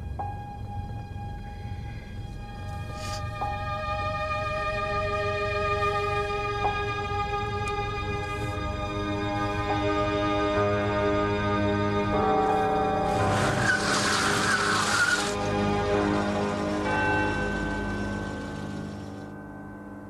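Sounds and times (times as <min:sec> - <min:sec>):
car engine droning: 0:00.0 - 0:19.4
car tires skidding in near collision with oncoming truck: 0:12.8 - 0:19.2.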